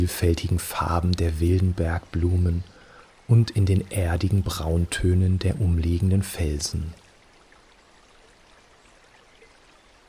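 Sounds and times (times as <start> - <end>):
speech: 0.0 - 2.7, 3.3 - 7.0
mountain spring water babbling and trickling over stones: 0.0 - 10.0.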